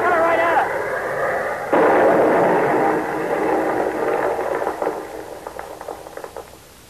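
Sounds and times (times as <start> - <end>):
German warplane diving and roaring overhead: 0.0 - 2.9
blasts from German warplane attack: 0.0 - 6.8
machine-gun fire from German warplane: 1.7 - 6.8.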